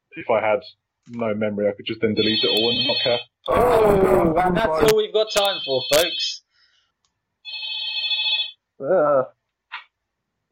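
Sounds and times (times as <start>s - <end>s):
speech: 0.2s - 6.4s, 8.8s - 9.4s
wall telephone electronic ring: 2.2s - 3.3s, 5.4s - 6.3s, 7.5s - 8.6s.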